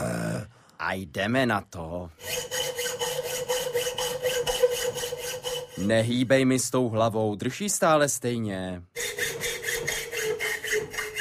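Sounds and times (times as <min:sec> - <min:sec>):
speech: 0:00.9 - 0:02.6, 0:05.8 - 0:08.9
blacksmith filing with a thin metal file: 0:02.2 - 0:06.2, 0:09.0 - 0:11.2.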